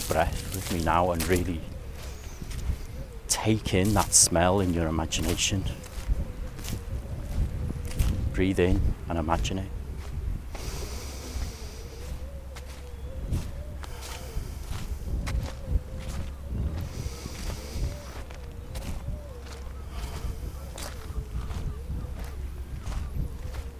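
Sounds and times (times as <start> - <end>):
footsteps on slimy bright green seaweed on a salty seashore: 0.0 - 23.7
speech: 0.1 - 1.7, 3.3 - 5.9, 8.4 - 9.8.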